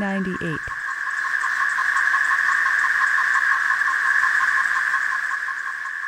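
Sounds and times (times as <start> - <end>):
person speaking: 0.0 - 0.7
male periodical cicadas calling and courting songs: 0.0 - 6.0.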